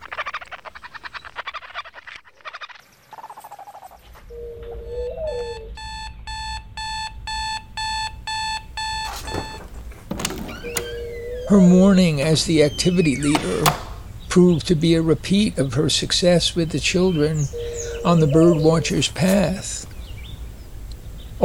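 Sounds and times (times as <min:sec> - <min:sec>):
chirping, croaking outdoor ambience: 0:00.0 - 0:05.8, 0:09.0 - 0:21.4
electronic alarm clock beeping: 0:04.9 - 0:09.7, 0:10.5 - 0:13.7
speech: 0:11.5 - 0:19.8.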